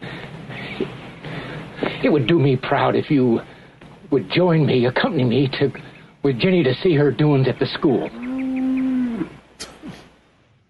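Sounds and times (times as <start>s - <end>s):
speech: 2.0s - 3.5s, 4.1s - 8.3s
cow mooing: 8.0s - 9.4s.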